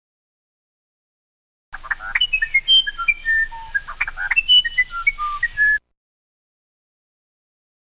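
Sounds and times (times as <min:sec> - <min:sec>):
wren warbling quick whistled notes: 0:01.8 - 0:05.8.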